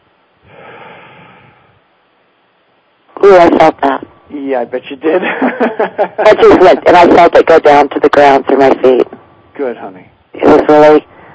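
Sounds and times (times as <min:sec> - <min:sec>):
person breathing in deeply: 0:00.4 - 0:01.8, 0:11.1 - 0:11.3
speech: 0:03.2 - 0:11.1
laughter: 0:05.2 - 0:06.8.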